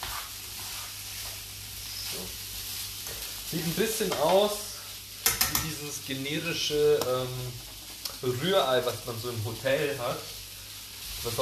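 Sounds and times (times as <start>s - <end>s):
spätzle sizzling while frying in a hot pan: 0.0s - 11.4s
speech: 3.5s - 4.7s, 5.6s - 10.4s, 11.2s - 11.4s.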